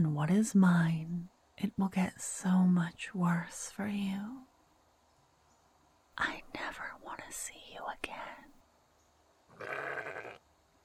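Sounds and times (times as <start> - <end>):
speech: 0.0 - 4.4, 6.2 - 8.4
sheep bleating: 9.5 - 10.4.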